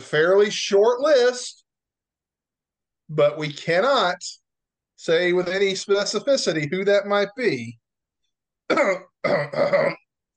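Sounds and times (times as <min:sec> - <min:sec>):
speech: 0:00.0 - 0:01.6, 0:03.1 - 0:04.4, 0:05.0 - 0:07.8, 0:08.7 - 0:10.0
person clearing throat: 0:08.7 - 0:10.1.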